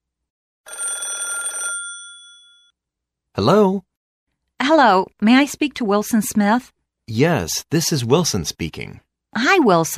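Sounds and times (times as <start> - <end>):
loud telephone bell ringing: 0.6 - 2.8
speech: 3.4 - 3.9, 4.6 - 9.9.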